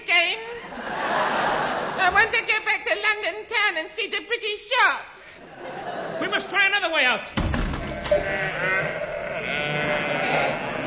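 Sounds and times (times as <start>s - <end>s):
laughter: 0.6s - 2.5s, 5.4s - 6.6s
speech: 3.4s - 7.4s, 8.1s - 8.9s
sheep bleating in another room of a house: 7.9s - 10.8s.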